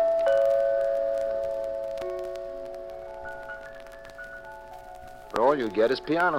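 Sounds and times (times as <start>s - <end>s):
doorbell chiming: 0.0s - 2.6s
speech: 5.5s - 6.3s.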